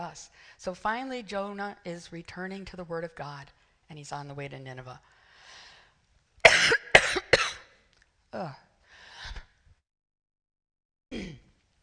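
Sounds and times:
speech: 0:00.1 - 0:05.6, 0:08.3 - 0:08.6
harsh coughing: 0:06.4 - 0:07.7, 0:11.1 - 0:11.5
breathy throat sounds and gasps: 0:08.4 - 0:09.6.

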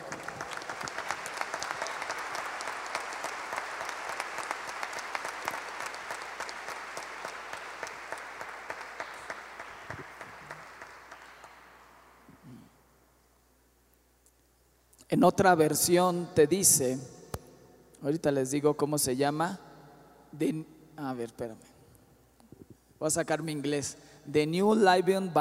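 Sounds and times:
large crowd applauding: 0:00.0 - 0:12.6
speech: 0:15.1 - 0:17.2, 0:18.0 - 0:19.6, 0:20.4 - 0:21.7, 0:23.0 - 0:25.3.

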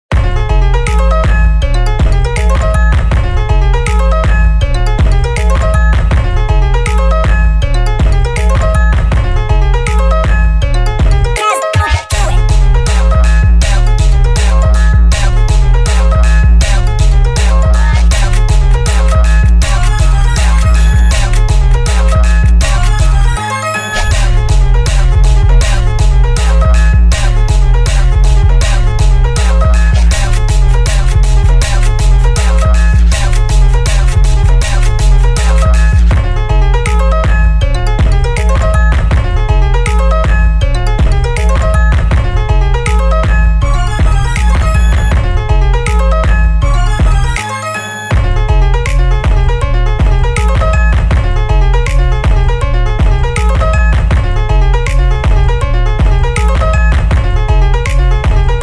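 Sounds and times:
high-pitched beat: 0:00.1 - 0:58.6.

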